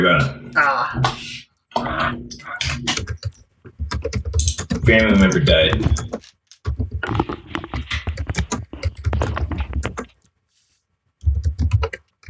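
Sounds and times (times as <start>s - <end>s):
speech: 0.0s - 6.4s
rapid forceful typing on a computer keyboard: 2.6s - 10.2s, 11.2s - 12.2s.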